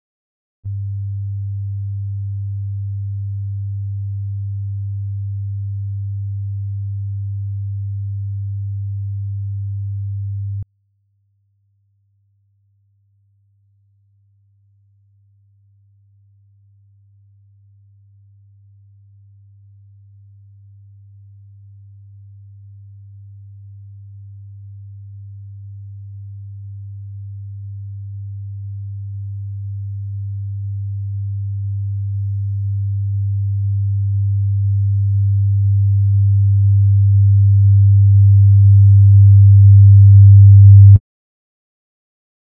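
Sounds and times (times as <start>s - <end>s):
100 Hz test tone at -20 dB: 0.7s - 10.7s, 17.2s - 41.0s.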